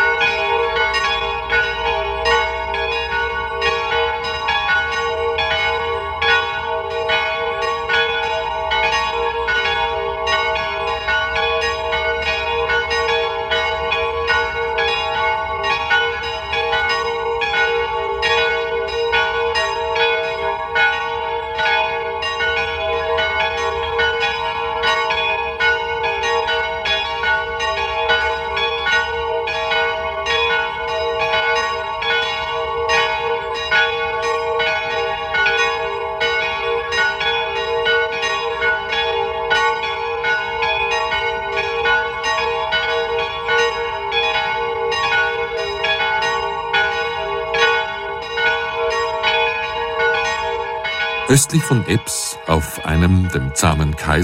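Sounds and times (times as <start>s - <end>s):
pilgrimage church bells pealing: 0.0s - 54.2s
speech: 51.3s - 54.2s.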